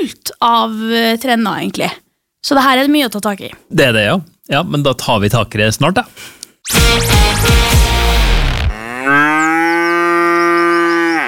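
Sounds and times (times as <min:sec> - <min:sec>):
speech: 0:00.1 - 0:07.6
cow mooing on outfield pasture: 0:08.7 - 0:11.2.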